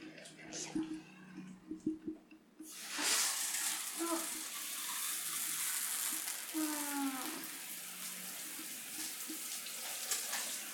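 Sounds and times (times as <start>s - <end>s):
running water rinsing something off: 0.0s - 10.7s.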